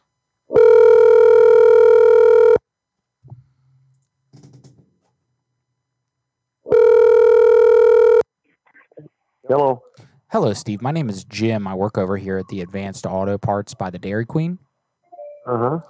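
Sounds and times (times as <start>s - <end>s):
telephone dial tone: 0.6s - 2.6s, 6.7s - 8.2s
speech: 9.5s - 14.6s, 15.4s - 15.8s.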